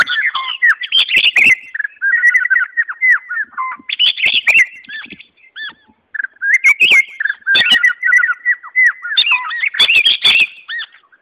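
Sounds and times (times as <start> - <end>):
White-rumped Shama song: 0.0 - 11.2.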